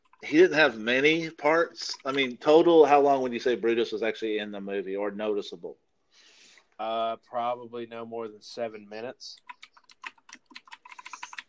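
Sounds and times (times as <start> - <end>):
speech: 0.2 - 5.8, 6.8 - 9.6
typing on a spring computer keyboard: 9.4 - 11.4.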